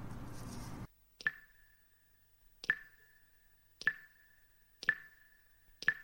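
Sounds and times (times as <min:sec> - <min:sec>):
water dripping after a summer rain shower: 0:01.2 - 0:01.8, 0:02.6 - 0:06.0.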